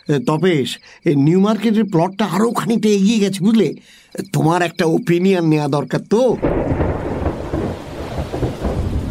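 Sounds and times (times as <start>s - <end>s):
speech: 0.0s - 7.2s
evening rain: 6.4s - 9.0s
thunder rumbling in the evening: 6.4s - 9.0s.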